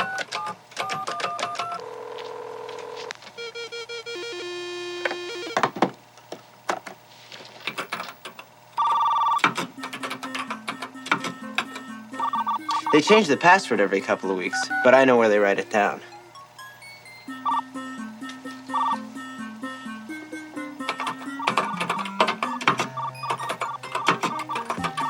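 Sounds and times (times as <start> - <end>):
modem dialing into a school computer with beeps and tones: 0.0 - 5.6, 8.8 - 9.4, 10.2 - 15.2, 17.3 - 19.4, 21.1 - 25.0
speech: 12.9 - 16.1.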